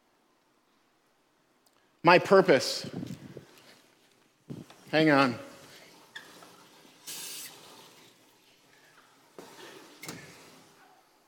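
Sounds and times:
speech: 2.0 - 3.0, 4.9 - 5.5
water running into baptismal tank: 5.5 - 10.8.

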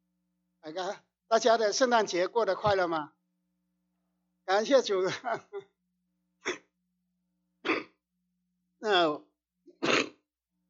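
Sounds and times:
speech: 0.6 - 3.2, 4.5 - 5.7, 8.8 - 9.2
sharp explosive cough from someone with a cold: 6.4 - 6.8, 7.6 - 8.0, 9.8 - 10.2.

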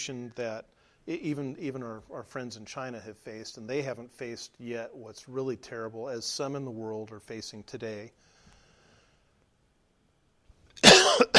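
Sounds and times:
speech: 0.0 - 8.3
person coughing: 10.8 - 11.3.

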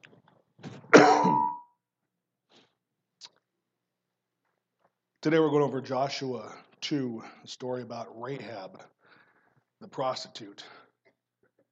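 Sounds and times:
brief raspy cough: 0.9 - 1.5
person clearing throat: 0.9 - 1.6
speech: 5.2 - 9.0, 9.8 - 10.8.

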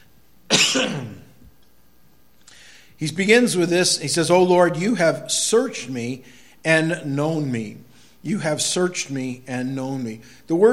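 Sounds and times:
throat clearing: 0.5 - 1.4
speech: 0.8 - 1.2, 3.0 - 10.7.

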